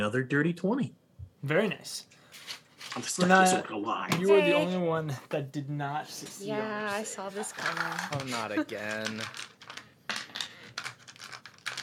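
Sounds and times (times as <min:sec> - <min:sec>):
speech: 0:00.0 - 0:09.5
handful of dice clattering together: 0:07.5 - 0:11.8.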